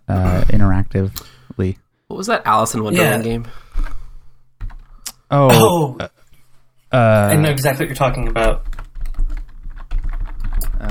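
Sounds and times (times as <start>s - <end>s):
speech: 0.1s - 3.9s, 5.3s - 6.2s, 6.9s - 8.8s
quick typing on a computer keyboard: 8.5s - 10.8s.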